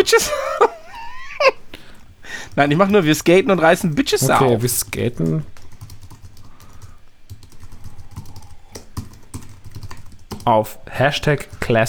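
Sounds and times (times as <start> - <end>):
speech: 0.0 - 0.8, 2.6 - 5.6, 10.4 - 11.8
laughter: 0.0 - 2.0
typing on a computer keyboard: 5.2 - 10.5.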